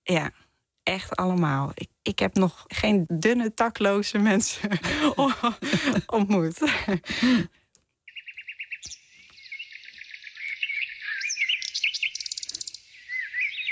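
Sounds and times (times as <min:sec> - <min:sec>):
speech: 0:00.1 - 0:07.6
laughter: 0:04.5 - 0:07.5
birds singing in quick high chirps and trills: 0:08.0 - 0:13.7.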